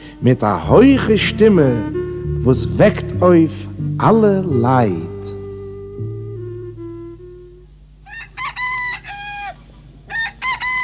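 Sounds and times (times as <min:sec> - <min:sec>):
speech: 0:00.2 - 0:05.1
low steady droning tones: 0:00.7 - 0:08.0
rooster crowing cock-a-doodle-doo: 0:08.0 - 0:10.8.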